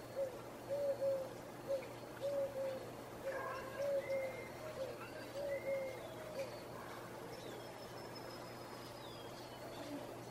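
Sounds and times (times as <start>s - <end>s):
dove cooing on an early morning balcony: 0.0s - 7.4s
birdsong chirps and whistles in the early morning: 0.0s - 10.2s
steady low hum: 0.0s - 10.2s
faint murmur: 1.8s - 10.2s.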